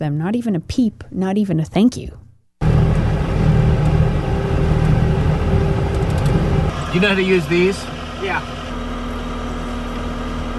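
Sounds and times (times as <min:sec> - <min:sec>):
speech: 0:00.0 - 0:02.2, 0:06.9 - 0:08.6
car engine revving hard while stuck in snow: 0:02.6 - 0:10.5.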